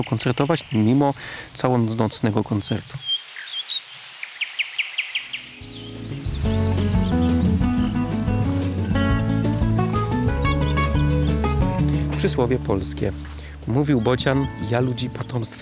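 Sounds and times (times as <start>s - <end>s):
speech: 0.0s - 3.1s, 12.2s - 15.6s
thrush nightingale singing: 0.0s - 15.6s
loud instrumental music: 5.6s - 15.6s.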